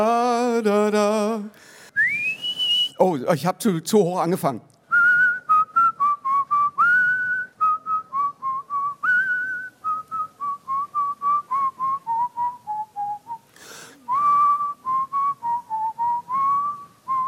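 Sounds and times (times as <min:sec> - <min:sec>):
speech: 0:00.0 - 0:01.7, 0:03.0 - 0:04.7
breathy burst: 0:01.5 - 0:02.1, 0:13.5 - 0:14.2
person whistling a lively melody: 0:02.0 - 0:03.0, 0:04.9 - 0:17.2.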